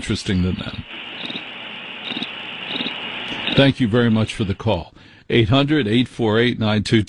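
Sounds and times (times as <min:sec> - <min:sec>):
speech: 0:00.0 - 0:01.1, 0:03.6 - 0:07.0
crickets chirping: 0:00.9 - 0:04.6.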